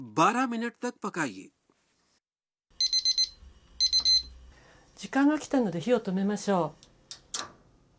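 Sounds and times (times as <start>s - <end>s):
speech: 0.2s - 1.6s, 5.0s - 6.9s
kitchen timer beeping with high-pitched electronic chirps: 2.8s - 4.4s.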